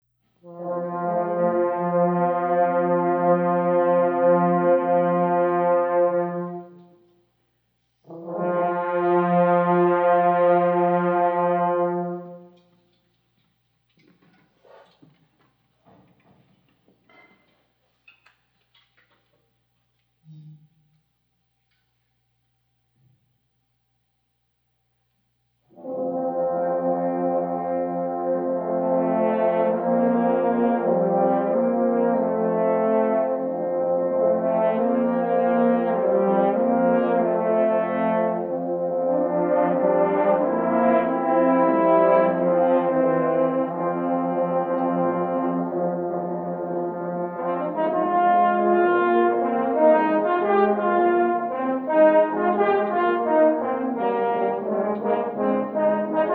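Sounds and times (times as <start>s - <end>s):
horn choir playing: 0.4s - 7.1s, 8.0s - 12.7s, 25.7s - 56.3s.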